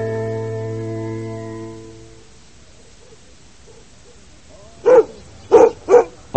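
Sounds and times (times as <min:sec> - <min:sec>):
dog barking at a sheep farm in New York State: 0:02.8 - 0:06.2.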